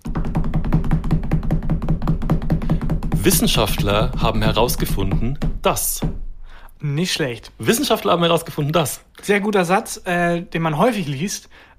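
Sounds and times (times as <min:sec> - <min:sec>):
rapid knocking on a hard surface: 0:00.0 - 0:06.4
speech: 0:03.2 - 0:06.2, 0:06.8 - 0:11.7.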